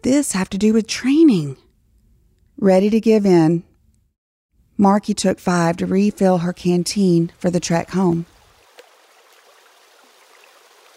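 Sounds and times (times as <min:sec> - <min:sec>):
speech: 0:00.0 - 0:01.6, 0:02.6 - 0:03.7, 0:04.8 - 0:08.3
shallow stream babbling over pebbles: 0:07.7 - 0:10.9.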